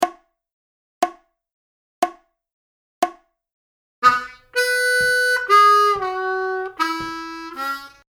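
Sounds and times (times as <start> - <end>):
12 bar country style blues lick on harmonica at 60 BPM: 4.0 - 8.1.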